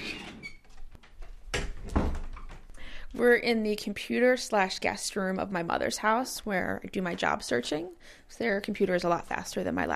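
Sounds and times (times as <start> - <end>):
old door creaking and squeaking: 0.0 - 0.9
speech: 3.2 - 9.9.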